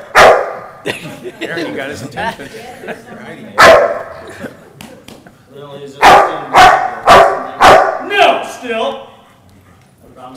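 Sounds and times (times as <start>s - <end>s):
dog barking: 0.0s - 0.7s, 3.6s - 4.2s, 6.0s - 8.1s
speech: 0.8s - 4.5s, 5.6s - 6.8s, 8.6s - 9.1s
laughter: 0.8s - 5.4s.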